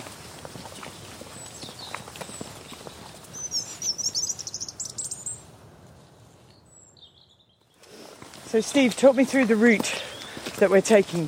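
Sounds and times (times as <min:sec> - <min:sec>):
soft clopping footsteps: 0:00.0 - 0:04.5, 0:07.6 - 0:11.2
birds singing in countryside village: 0:00.6 - 0:05.5, 0:06.5 - 0:11.2
speech: 0:08.6 - 0:11.2.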